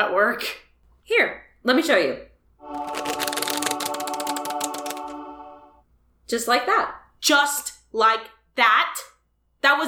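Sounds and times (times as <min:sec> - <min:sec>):
speech: 0:00.0 - 0:03.1, 0:06.3 - 0:09.8
deck of playing cards riffle shuffled: 0:02.7 - 0:05.2.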